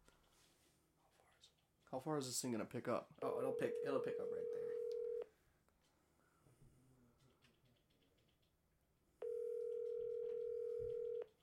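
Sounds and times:
low noise: 0.0 - 11.4
speech: 1.9 - 4.8
telephone dial tone: 3.8 - 5.2, 9.2 - 11.3.

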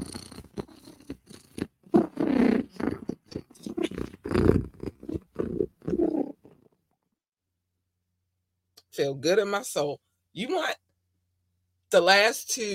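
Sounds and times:
cat purring: 0.0 - 6.7
speech: 9.0 - 10.8, 11.9 - 12.7.

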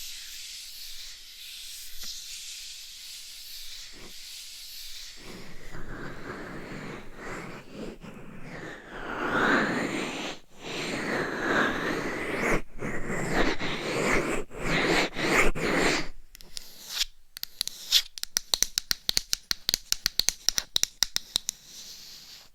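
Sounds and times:
scratching and rubbing against a dummy-head microphone: 5.1 - 16.2
crisp taps on a dummy-head microphone: 17.4 - 21.6.

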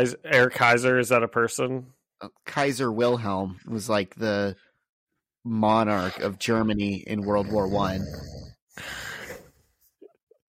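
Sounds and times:
speech: 0.0 - 4.6, 5.4 - 9.0
person faking a loud rasping throaty snore: 7.0 - 9.5.

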